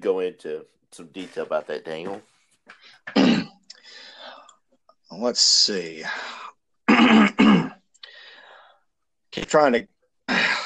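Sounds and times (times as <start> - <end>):
speech: 0.0 - 3.6, 5.1 - 7.7, 9.3 - 9.9
throat clearing: 2.8 - 3.8, 6.9 - 7.8.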